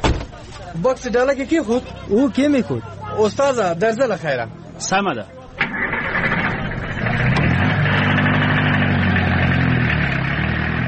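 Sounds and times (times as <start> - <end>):
speech: 0.5 - 5.8
taxi car engine running: 6.2 - 10.8.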